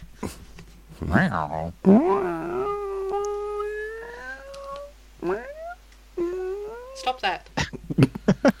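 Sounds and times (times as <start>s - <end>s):
speech: 0.2s - 0.4s, 1.0s - 2.6s, 7.2s - 7.5s
human voice mimicking a crying cat: 1.1s - 7.3s.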